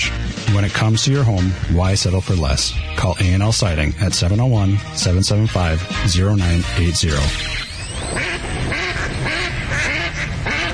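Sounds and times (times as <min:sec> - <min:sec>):
speech: 0:00.5 - 0:07.6
duck quacking: 0:08.1 - 0:10.7.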